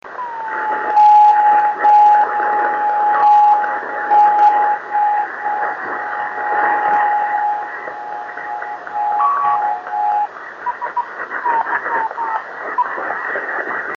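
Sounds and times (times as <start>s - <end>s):
radio signal at 26590 kHz: 0.0s - 13.9s.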